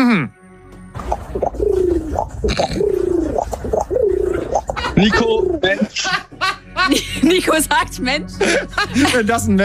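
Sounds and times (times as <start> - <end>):
speech: 0.1 - 0.4, 2.4 - 3.0, 5.0 - 6.1, 6.9 - 9.6
person imitating pigeon coos: 1.7 - 5.6
laughter: 4.7 - 7.6, 8.4 - 9.5.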